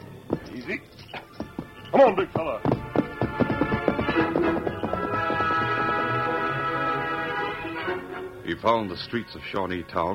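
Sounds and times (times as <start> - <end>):
hoofbeats of a saddled horse riding off: 0.0 - 7.8
speech: 1.9 - 2.8, 8.5 - 10.1
orchestral music: 2.4 - 10.1.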